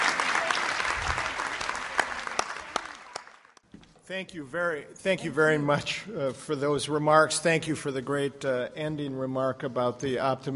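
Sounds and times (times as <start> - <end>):
audience applauding a speaker at the end of a talk: 0.0 - 3.6
speech: 4.1 - 10.5.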